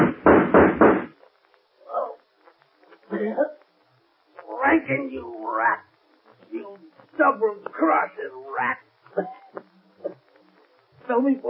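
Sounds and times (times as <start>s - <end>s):
heavy knocks or thumps against a door: 0.0s - 1.1s
soft sounds: 1.1s - 11.4s
speech: 3.2s - 3.6s, 4.8s - 9.6s, 11.1s - 11.4s.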